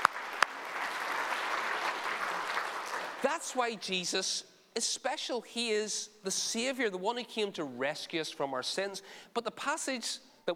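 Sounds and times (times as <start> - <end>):
audience clapping: 0.0 - 3.6
speech: 3.2 - 10.5.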